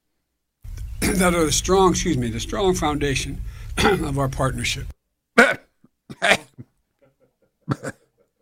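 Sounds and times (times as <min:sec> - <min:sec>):
speech: 0:01.2 - 0:05.0
person coughing: 0:03.8 - 0:04.0, 0:05.4 - 0:06.7, 0:07.7 - 0:08.2.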